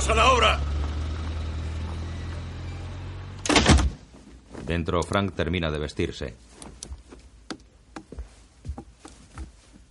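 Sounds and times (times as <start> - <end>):
speech: 0.0 - 0.7, 4.7 - 6.8
car engine rumbling: 0.0 - 4.0.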